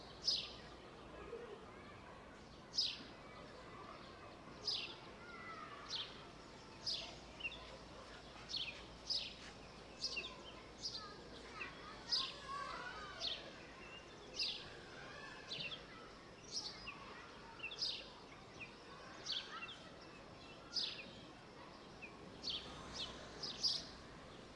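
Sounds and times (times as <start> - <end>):
soft murmuring outdoor background: 0.0 - 24.5
birds singing in short bright chirps: 6.8 - 21.1, 21.8 - 24.5.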